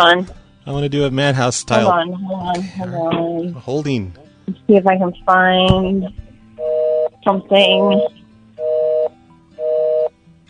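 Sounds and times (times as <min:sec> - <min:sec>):
speech: 0:00.0 - 0:06.2, 0:07.2 - 0:08.2
telephone busy signal: 0:06.6 - 0:10.1.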